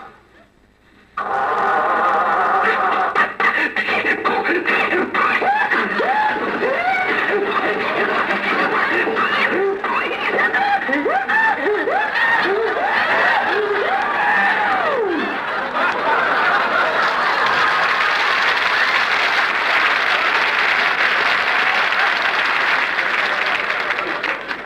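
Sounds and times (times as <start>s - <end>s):
voice imitating an old car motor sputtering and coughing: 1.2s - 13.9s
laughter: 1.2s - 24.6s.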